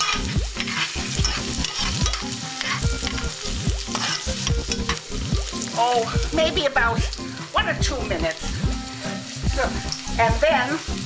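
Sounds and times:
scraping stirring strokes in a pot of frying onion: 0.0 - 5.0
chopped onion sizzling as it fries in a pot: 0.0 - 11.0
speech: 5.8 - 8.6, 9.6 - 11.0.

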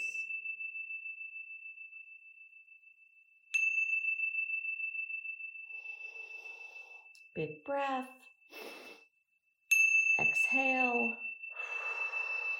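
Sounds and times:
meditation chime ringing: 0.0 - 7.3, 9.7 - 12.5
speech: 7.4 - 8.7, 10.5 - 11.3.

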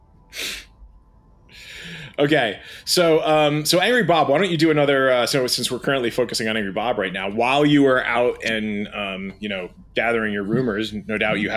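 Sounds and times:
breathy burst: 0.3 - 0.7, 1.5 - 2.9
person sneezing: 0.4 - 0.6
speech: 1.6 - 11.5.

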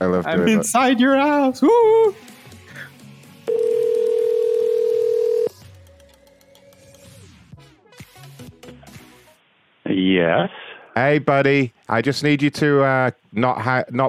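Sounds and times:
speech: 0.0 - 2.3, 10.3 - 14.0
telephone dial tone while a number is being called: 3.5 - 5.6.

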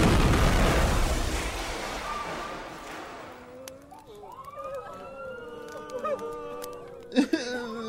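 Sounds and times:
grenade explosion: 0.0 - 3.2.

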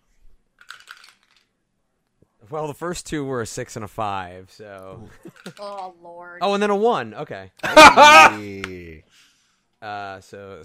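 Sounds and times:
dice clattering across a hard surface: 0.6 - 1.5
speech: 2.4 - 10.6
laughter: 7.6 - 8.7.

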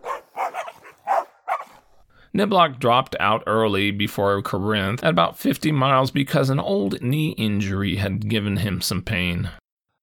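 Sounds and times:
petrol station owner's dogs barking to chase a man away: 0.0 - 1.8
speech: 2.4 - 9.6.

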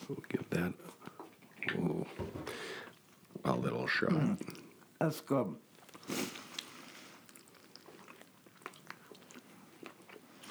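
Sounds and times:
people chewing beef jerky: 0.0 - 5.0, 5.7 - 10.4
speech: 0.1 - 0.9, 3.9 - 6.3.

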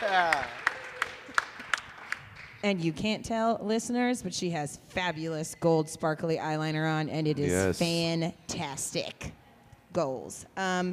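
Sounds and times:
audience clapping: 0.0 - 2.9
speech: 2.6 - 9.4, 10.0 - 10.9.

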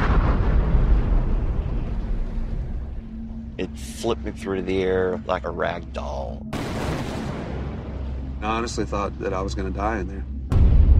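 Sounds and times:
deep booming explosion on an oil rig: 0.0 - 3.0, 6.5 - 8.0, 10.5 - 10.9
speech: 3.6 - 6.9, 8.4 - 10.3.

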